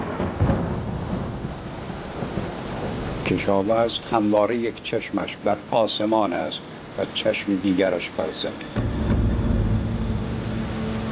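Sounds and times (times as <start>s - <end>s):
deep rumble of thunder: 0.0s - 4.1s, 8.8s - 11.1s
heavy rain: 0.0s - 11.1s
speech: 3.3s - 9.0s.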